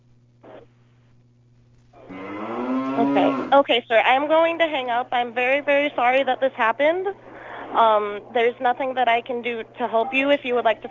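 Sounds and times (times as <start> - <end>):
steady low electrical hum: 0.0 - 10.8
cow mooing loudly: 2.0 - 3.7
speech: 3.0 - 10.8.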